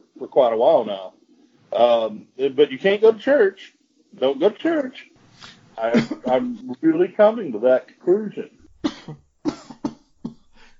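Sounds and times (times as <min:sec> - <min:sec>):
speech: 0:00.3 - 0:09.2
sharp coughs: 0:05.9 - 0:06.6, 0:08.8 - 0:10.7.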